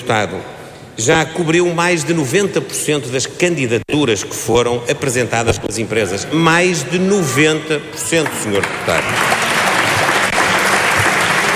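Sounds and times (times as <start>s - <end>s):
speech: 0.1s - 9.4s
applause from members of parliament on one party's benches: 8.1s - 11.5s.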